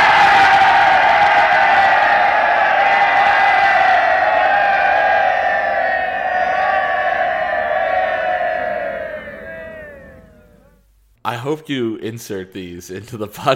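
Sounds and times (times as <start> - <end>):
large group of men cheering in one roaring shout: 0.0 - 10.8
speech: 11.5 - 13.5.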